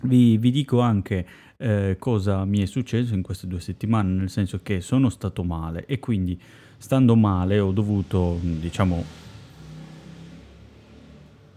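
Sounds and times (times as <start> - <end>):
speech: 0.1 - 9.2
motorcycle engine revving as it passes along the street: 7.5 - 11.5.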